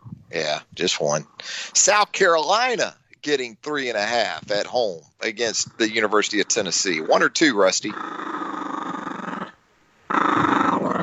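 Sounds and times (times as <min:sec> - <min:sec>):
speech: 0:00.3 - 0:08.3
dog growling: 0:07.9 - 0:11.0.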